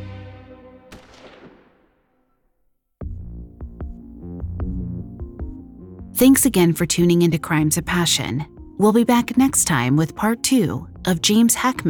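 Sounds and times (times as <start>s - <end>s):
gunshot from a pistol drawn from a coat pocket: 0.9s - 2.2s
speech: 6.2s - 11.8s.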